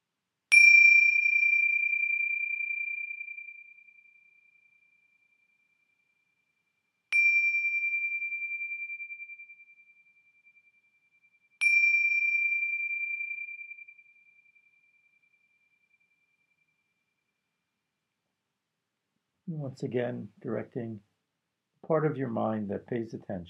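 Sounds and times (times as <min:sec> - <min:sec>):
meditation bell ringing: 0:00.5 - 0:06.2, 0:07.1 - 0:17.3
speech: 0:19.5 - 0:21.1, 0:21.8 - 0:23.4.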